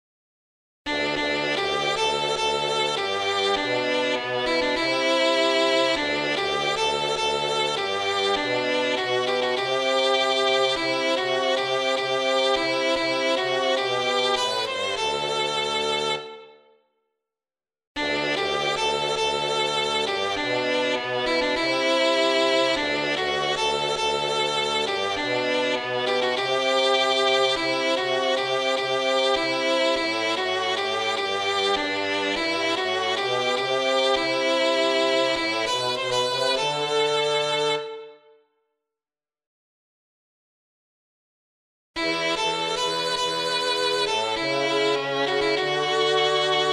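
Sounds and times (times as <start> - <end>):
violin: 0.9 - 16.7, 18.0 - 38.4, 42.0 - 46.7.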